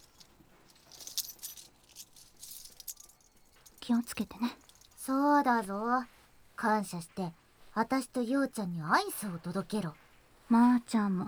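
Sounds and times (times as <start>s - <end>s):
keys jingling and clinking: 0.0s - 5.1s
speech: 3.9s - 11.2s.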